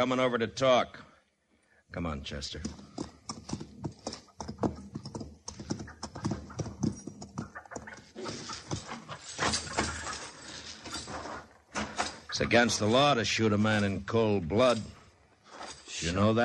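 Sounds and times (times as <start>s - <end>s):
speech: 0.0s - 1.0s, 1.9s - 2.9s, 12.4s - 15.0s, 16.0s - 16.4s
horse hooves clip-clopping: 2.5s - 12.1s.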